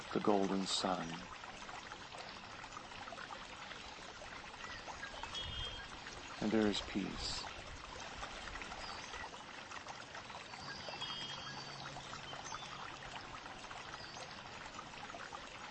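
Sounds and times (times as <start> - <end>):
soft bubbling water trickling: 0.0 - 15.6
speech: 0.1 - 1.4, 6.4 - 7.5.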